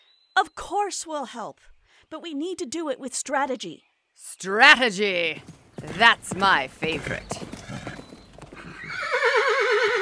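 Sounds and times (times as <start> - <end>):
speech: 0.4 - 7.5
horse hooves clip-clopping: 4.7 - 9.6
loud horse neigh with trilling pitch: 5.4 - 10.0.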